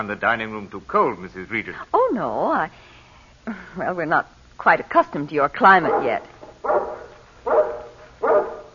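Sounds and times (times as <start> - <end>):
speech: 0.0 - 7.6
guard dog barking: 5.8 - 8.7.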